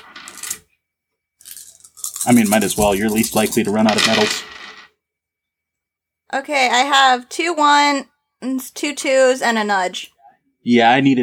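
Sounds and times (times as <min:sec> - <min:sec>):
handful of dice clattering and rattling: 0:00.0 - 0:00.7, 0:01.4 - 0:04.9
speech: 0:02.2 - 0:04.6, 0:06.4 - 0:11.2.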